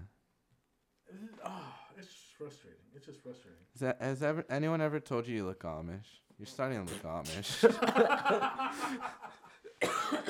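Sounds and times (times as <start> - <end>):
person gasping: 1.1 - 2.0, 8.6 - 9.2
speech: 2.0 - 10.2
person coughing and choking on a cough drop: 6.9 - 8.1, 9.8 - 10.2
laughter: 7.4 - 9.6.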